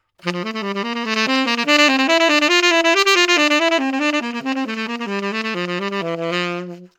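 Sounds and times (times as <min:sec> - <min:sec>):
tonguing on a wind instrument: 0:00.2 - 0:06.9.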